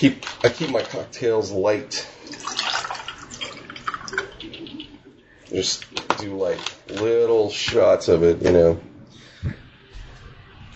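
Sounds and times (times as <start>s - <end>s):
speech: 0.0s - 2.5s, 5.5s - 9.6s
whiskey poured into a glass: 2.2s - 4.8s.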